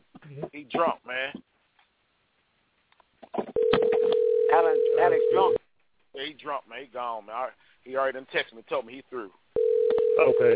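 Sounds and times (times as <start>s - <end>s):
speech: 0.3s - 1.5s, 6.3s - 9.4s, 10.2s - 10.5s
electronic telephone tone: 3.6s - 5.6s, 9.6s - 10.5s.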